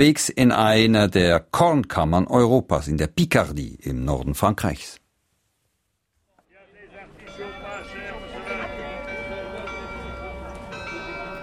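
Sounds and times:
speech: 0.0 - 5.0
murmur and bustle of an outdoor crowd: 6.4 - 11.4
town hall tower carillon bells chiming: 7.0 - 11.4.

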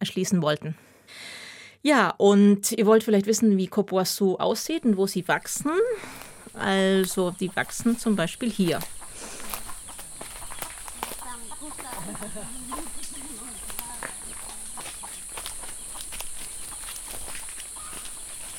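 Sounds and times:
speech: 0.0 - 1.2, 1.8 - 9.4
crickets chirping: 4.6 - 18.5
soft footsteps: 4.8 - 18.5
chickens clucking: 5.2 - 18.5
laughter: 11.6 - 13.7.

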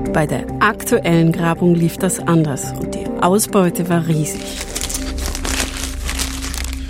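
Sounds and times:
speech: 0.2 - 5.0
plastic bag of excavation finds with bones and teeth rustling in a castle cellar: 4.2 - 6.8.

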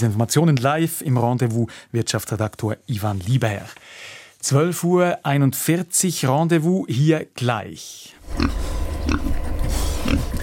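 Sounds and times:
speech: 0.0 - 10.2
pig on a Swiss farm grunting and oinking: 8.2 - 10.4.

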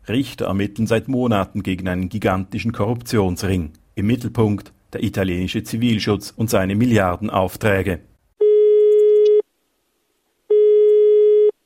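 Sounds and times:
speech: 0.1 - 8.1
telephone line tone on a wiretapped call between construction contractors in Italy: 8.4 - 9.4, 10.5 - 11.6.

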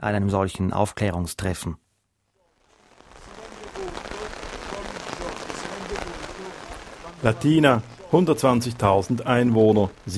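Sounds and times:
speech: 0.0 - 1.8, 7.2 - 10.1
heavy raindrops on a taut tent roof outside Latina, Italy: 2.7 - 10.1
faint murmuring voices at an anti-mafia awareness meeting: 3.1 - 9.1.

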